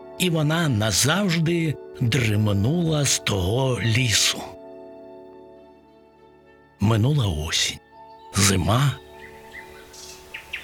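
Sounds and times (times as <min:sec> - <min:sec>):
speech: 0:00.2 - 0:04.6, 0:06.9 - 0:09.0
nightingale singing: 0:07.1 - 0:10.6.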